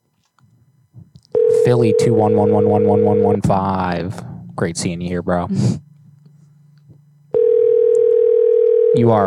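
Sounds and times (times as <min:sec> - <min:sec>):
brief low hum: 0:00.2 - 0:09.2
telephone tone through the earpiece on an unanswered call to a restaurant: 0:01.4 - 0:03.4, 0:07.3 - 0:09.2
speech: 0:01.6 - 0:05.8, 0:09.0 - 0:09.2.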